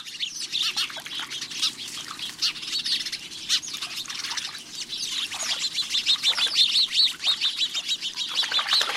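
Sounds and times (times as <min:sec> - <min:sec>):
flock of house sparrows chattering at a bird bath: 0:00.0 - 0:08.9.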